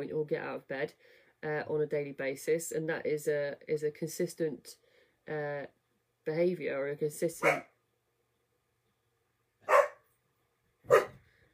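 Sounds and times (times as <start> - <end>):
speech: 0.0 - 7.7
herding dog barking: 7.4 - 7.7, 9.6 - 10.0, 10.9 - 11.2.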